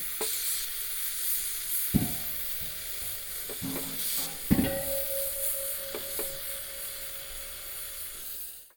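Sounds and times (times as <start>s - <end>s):
gas cylinder: 0.2s - 8.6s.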